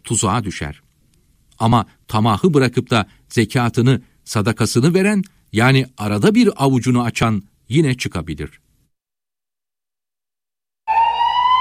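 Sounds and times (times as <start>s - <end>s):
speech: 0.1s - 0.9s, 1.6s - 8.6s
ambulance siren wailing: 10.9s - 11.6s.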